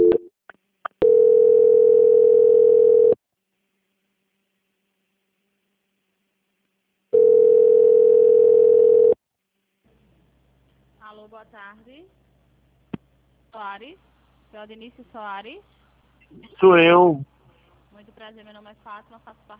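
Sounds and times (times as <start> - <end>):
telephone line blips during a call transfer: 1.0 - 3.2, 7.2 - 9.2
speech: 11.4 - 12.3, 13.5 - 17.3, 18.0 - 19.5.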